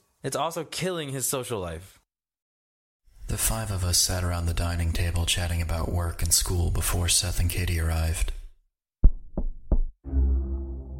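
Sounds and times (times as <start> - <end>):
speech: 0.2 - 2.0, 3.3 - 8.4
firm knocks on a door: 9.0 - 10.0.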